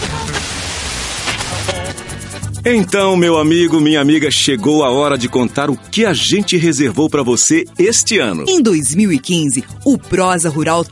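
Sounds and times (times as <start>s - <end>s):
car radio static hiss: 0.0s - 2.1s
speech: 2.6s - 10.9s.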